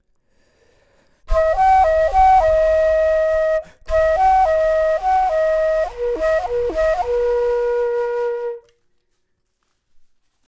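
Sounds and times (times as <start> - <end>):
low flute: 1.3 - 8.8.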